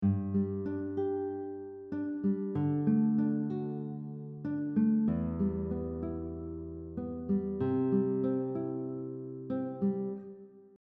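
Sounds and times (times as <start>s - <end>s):
fingerpicked guitar arpeggio pattern in four-four time: 0.0s - 10.7s.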